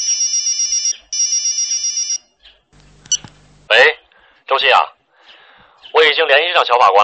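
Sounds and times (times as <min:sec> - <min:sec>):
phone ringtone with an electronic melodic ring: 0:00.0 - 0:02.2
speech: 0:06.3 - 0:07.0.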